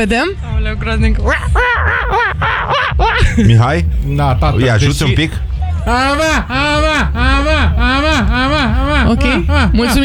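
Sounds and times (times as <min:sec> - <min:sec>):
speech: 0:00.0 - 0:10.0
laughter: 0:01.2 - 0:10.0
mother imitating a seagull call during a family contest: 0:05.9 - 0:10.0.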